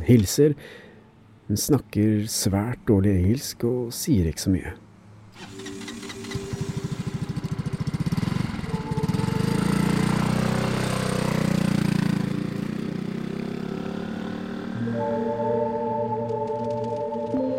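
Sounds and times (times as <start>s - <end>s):
speech: 0.0s - 0.9s, 1.5s - 5.7s
small scooter motor engine buzzing: 5.3s - 17.4s.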